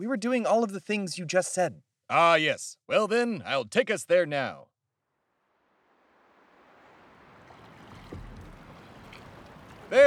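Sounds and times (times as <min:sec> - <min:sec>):
speech: 0:00.0 - 0:04.7
steady rushing water of a river: 0:05.4 - 0:10.0.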